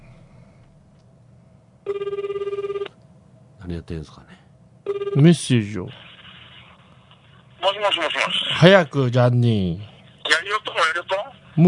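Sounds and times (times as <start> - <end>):
speech: 1.9 - 2.2, 3.7 - 4.4, 5.2 - 6.0, 7.8 - 9.9, 11.0 - 11.6
outgoing phone call ringback tone: 1.9 - 2.9, 4.9 - 5.3.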